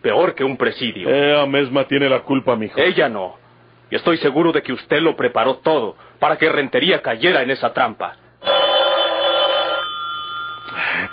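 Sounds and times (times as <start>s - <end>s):
speech: 0.0s - 8.2s
telephone bell ringing: 8.4s - 11.1s.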